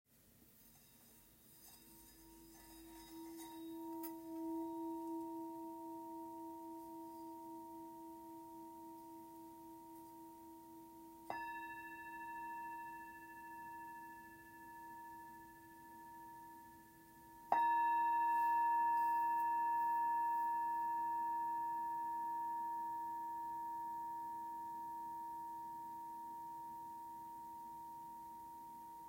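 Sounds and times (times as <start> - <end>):
bronze singing bowl of 595g: 0.7 - 29.0.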